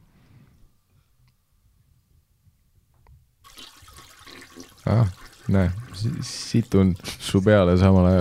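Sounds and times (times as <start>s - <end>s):
toilet flushing: 3.4s - 8.1s
speech: 4.9s - 8.1s.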